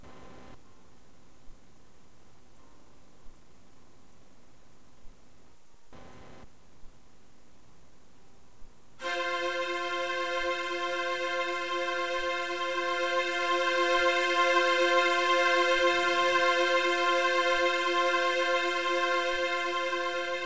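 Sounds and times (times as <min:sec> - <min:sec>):
string instruments playing: 0:09.0 - 0:20.4.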